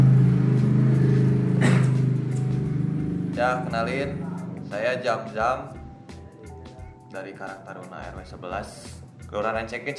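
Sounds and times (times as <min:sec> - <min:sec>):
motorcycle engine droning in Rancaekek on the outskirts of Bandung: 0:00.0 - 0:06.0
speech: 0:03.4 - 0:05.8, 0:07.1 - 0:09.9.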